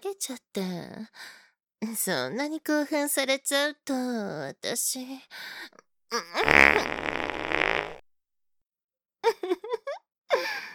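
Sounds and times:
speech: 0.2 - 8.0
long loud buzzing fart: 6.2 - 8.0.

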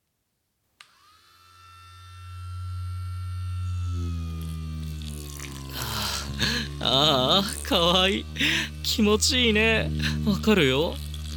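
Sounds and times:
electric toothbrush buzzing: 0.8 - 11.3
speech: 6.8 - 11.0.

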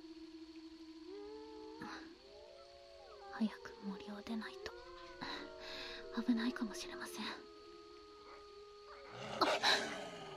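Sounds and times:
steady low hum: 0.0 - 10.3
speech: 3.4 - 5.4, 6.1 - 7.5, 9.1 - 9.9
wolf growling: 9.0 - 10.3.

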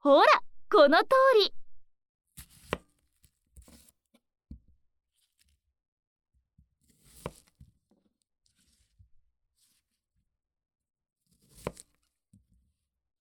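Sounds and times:
speech: 0.0 - 1.6
sharp knife chopping an onion on a cutting board: 7.0 - 7.6, 11.4 - 12.0.

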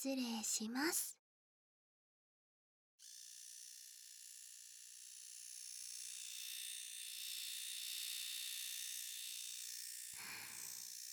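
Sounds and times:
speech: 0.0 - 1.2
electric shaver shaving fine hair on an ear: 3.0 - 11.1.

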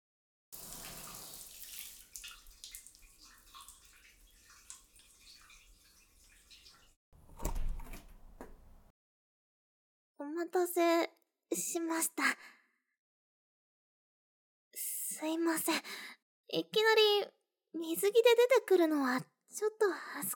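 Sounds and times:
burst of splashing and clatter: 0.6 - 7.0
shower running with a steady hiss of spraying water: 0.6 - 7.0
speech: 10.5 - 12.6, 15.2 - 20.3.

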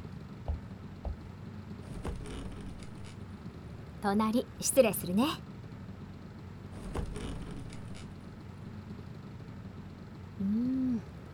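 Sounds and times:
engine rumble inside an old well-worn bus: 0.2 - 5.4, 6.6 - 9.5
faint clicks and creaks: 1.8 - 3.6, 6.8 - 9.0
speech: 4.0 - 5.5.

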